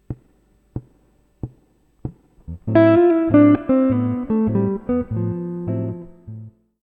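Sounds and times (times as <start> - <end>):
guitar modal licks in Aeolian mode: 2.1 - 6.6.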